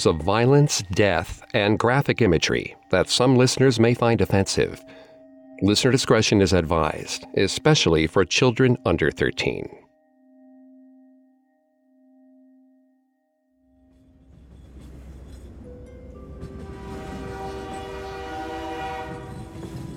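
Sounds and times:
speech: 0.0s - 5.0s, 5.6s - 9.8s
heavy train rumbling along the tracks: 14.0s - 19.9s
train clatter on tracks: 14.0s - 19.9s
train horn: 16.4s - 19.9s.

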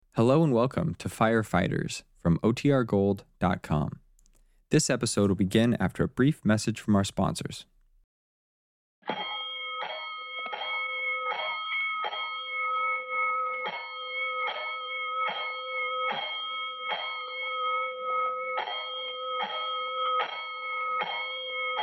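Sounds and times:
speech: 0.2s - 4.0s, 4.7s - 7.7s
loud fire alarm bell clanging a signal to all stations: 9.1s - 21.8s.

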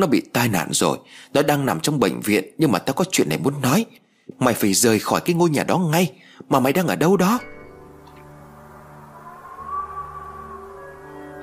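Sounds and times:
speech: 0.0s - 7.6s
steady low hollow wind-like humming drone: 7.4s - 11.4s.

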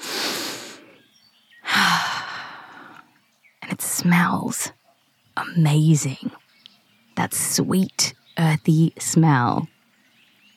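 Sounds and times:
deep breath in: 0.0s - 3.1s
speech: 4.0s - 4.8s, 5.4s - 6.4s, 7.2s - 9.7s.

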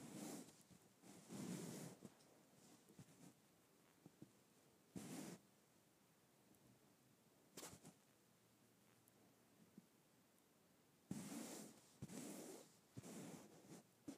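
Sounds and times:
fabric stroked in rough brushing bursts: 0.0s - 3.4s, 5.0s - 5.4s, 11.1s - 14.1s.

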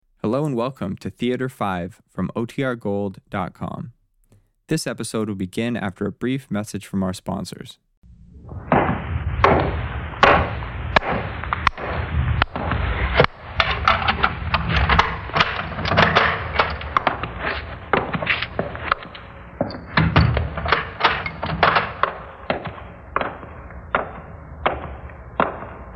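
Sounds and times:
speech: 0.3s - 4.0s, 4.7s - 7.8s
heavy doors closing at a youth house: 8.5s - 25.9s.

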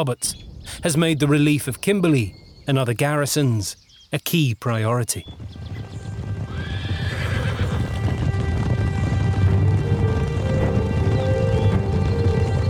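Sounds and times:
speech: 0.0s - 5.7s
galloping hooves of a large cavalry force: 4.7s - 12.6s
cavalry horses neighing: 5.6s - 12.6s.

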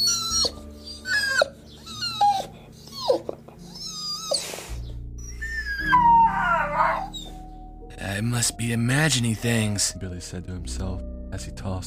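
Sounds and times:
dog whining and howling: 0.0s - 7.5s
speech: 8.2s - 11.8s.

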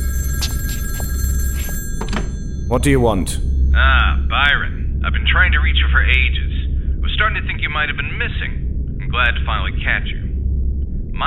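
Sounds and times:
old-fashioned telephone bell ringing: 0.0s - 4.8s
low rumble: 2.4s - 11.2s
speech: 2.7s - 4.6s, 5.4s - 6.5s, 7.2s - 10.2s.

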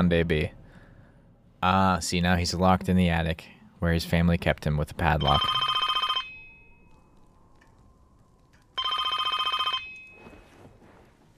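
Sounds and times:
speech: 0.0s - 0.6s, 1.6s - 5.8s
telephone ringing with a bright trilling bell: 5.2s - 7.3s, 8.8s - 10.4s.

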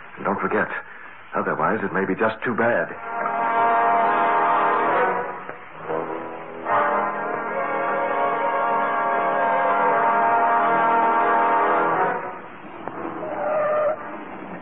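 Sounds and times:
speech: 0.2s - 3.3s
car horn honking: 3.0s - 14.1s.

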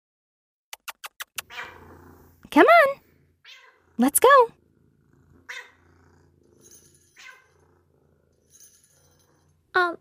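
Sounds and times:
cat meowing in a basement: 3.5s - 3.8s
speech: 4.0s - 4.6s, 9.8s - 9.9s.

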